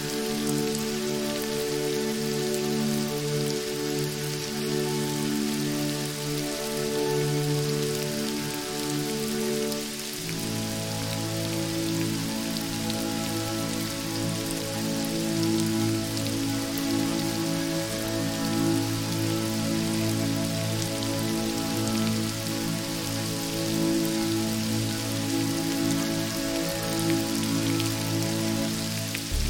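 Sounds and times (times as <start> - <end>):
calm meditation music with low sustained tones: 0.0 - 29.4
steady dense rain pattering: 0.0 - 29.4.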